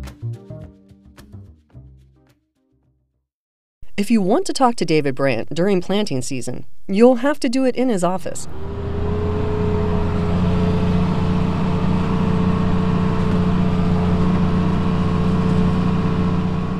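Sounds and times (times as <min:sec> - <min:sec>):
speech: 0:04.0 - 0:08.8
heavy diesel tractor engine running, heard inside the cab: 0:08.4 - 0:16.7.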